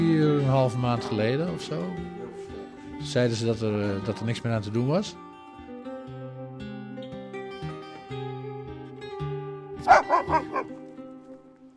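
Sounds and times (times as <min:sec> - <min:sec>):
speech: 0:00.6 - 0:02.2, 0:03.0 - 0:05.2
dogs barking: 0:09.8 - 0:10.8.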